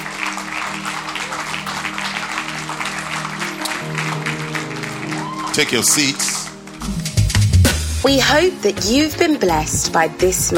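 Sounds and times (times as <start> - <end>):
audience clapping: 0.0 - 7.6
speech: 5.6 - 7.0, 8.0 - 10.5.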